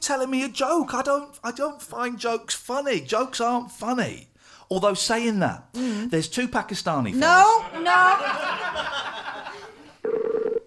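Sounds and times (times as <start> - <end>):
speech: 0.0 - 9.1
laughter: 7.2 - 10.0
telephone dialing tones: 10.0 - 10.6.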